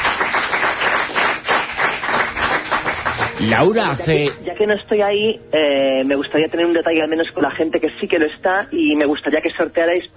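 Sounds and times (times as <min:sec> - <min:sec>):
listeners applauding at a live evening event: 0:00.0 - 0:04.4
speech: 0:03.4 - 0:10.1.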